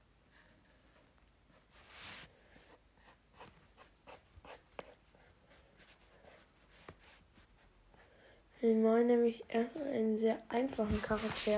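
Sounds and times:
pencil sketching a light circle on paper: 0:00.3 - 0:08.1, 0:10.8 - 0:11.5
speech: 0:08.6 - 0:11.5.

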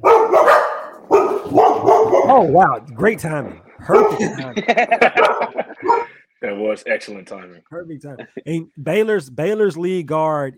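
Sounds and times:
dog barking loudly: 0:00.0 - 0:02.5, 0:03.9 - 0:04.3, 0:05.0 - 0:06.1
speech: 0:02.4 - 0:10.5
laughter: 0:03.8 - 0:06.2, 0:07.3 - 0:08.7.

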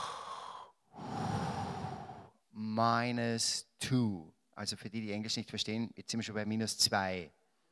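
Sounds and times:
deep breath: 0:00.0 - 0:02.4
speech: 0:02.8 - 0:07.4.

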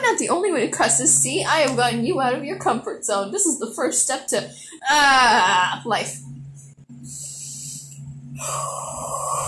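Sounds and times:
speech: 0:00.2 - 0:06.3, 0:08.4 - 0:09.0
deep breathing: 0:07.0 - 0:09.4.

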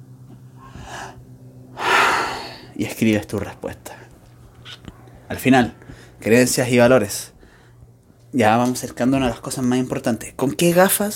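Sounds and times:
slow deep breath in and out: 0:00.5 - 0:02.8, 0:05.8 - 0:06.2, 0:07.3 - 0:07.9
speech: 0:02.8 - 0:04.1, 0:04.8 - 0:07.3, 0:08.3 - 0:11.1.

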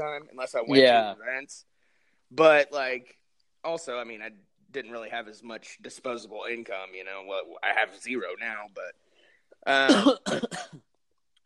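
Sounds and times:
speech: 0:00.0 - 0:01.7, 0:02.3 - 0:09.0, 0:09.6 - 0:10.9
harsh rasping coughing: 0:09.7 - 0:10.9.

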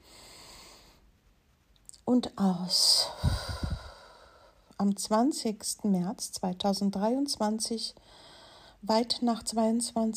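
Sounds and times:
deep airy breath drawn in: 0:00.0 - 0:01.0, 0:03.1 - 0:04.7, 0:08.0 - 0:08.8
speech: 0:02.1 - 0:03.3, 0:04.8 - 0:08.2, 0:08.8 - 0:10.1.

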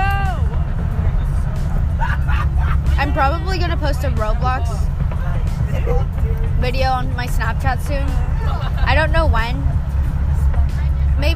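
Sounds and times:
faint chatter: 0:00.0 - 0:11.3
low rumble of a moving bus from inside: 0:00.0 - 0:11.3
laughter: 0:01.6 - 0:03.6, 0:05.4 - 0:06.4, 0:08.2 - 0:09.1
speech: 0:03.1 - 0:04.9, 0:05.8 - 0:09.8, 0:11.2 - 0:11.3.

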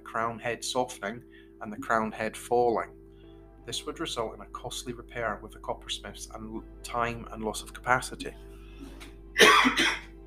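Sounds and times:
speech: 0:00.1 - 0:03.0, 0:03.7 - 0:10.0
quick harsh coughs: 0:09.4 - 0:10.1.

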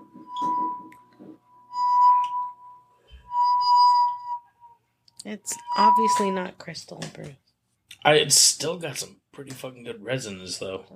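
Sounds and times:
wet finger rubbing a wine glass rim to ring: 0:01.7 - 0:04.8, 0:05.5 - 0:06.4
speech: 0:05.2 - 0:07.4, 0:08.0 - 0:10.9.

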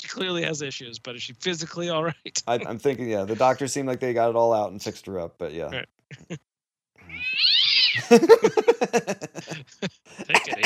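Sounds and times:
speech: 0:00.2 - 0:06.5, 0:07.2 - 0:10.6
laughter: 0:03.2 - 0:03.8, 0:08.0 - 0:10.6
cat meowing: 0:07.0 - 0:08.1.

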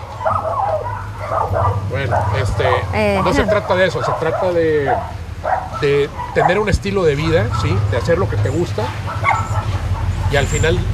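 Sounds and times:
dog yappy whiny barking: 0:00.0 - 0:10.9
steady low hum: 0:00.0 - 0:10.9
speech: 0:01.9 - 0:09.4, 0:10.3 - 0:10.9.

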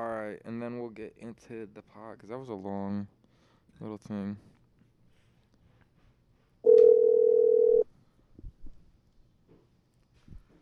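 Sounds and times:
speech: 0:00.3 - 0:03.2, 0:03.8 - 0:04.5
telephone dial tone while a call is being placed: 0:06.7 - 0:07.8.

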